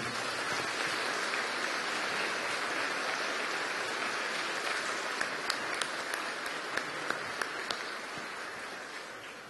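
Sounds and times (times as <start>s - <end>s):
audience applauding: 0.0s - 9.2s
sharper individual claps: 4.2s - 8.4s.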